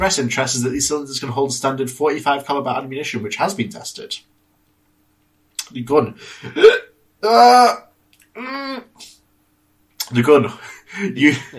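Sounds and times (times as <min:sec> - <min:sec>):
speech: 0:00.0 - 0:04.3, 0:05.7 - 0:07.8, 0:08.4 - 0:09.1, 0:10.1 - 0:11.5
vocal hiccups: 0:06.5 - 0:09.2.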